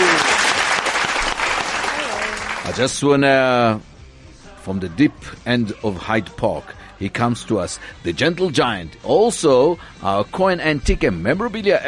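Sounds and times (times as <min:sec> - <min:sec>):
evening event audience applause welcoming a guest: 0:00.0 - 0:02.9
speech: 0:02.8 - 0:03.9, 0:04.6 - 0:11.8.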